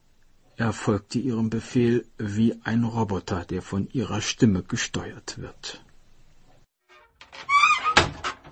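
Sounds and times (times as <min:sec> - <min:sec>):
speech: 0:00.6 - 0:05.8
house front door hinge squeal: 0:06.9 - 0:08.2.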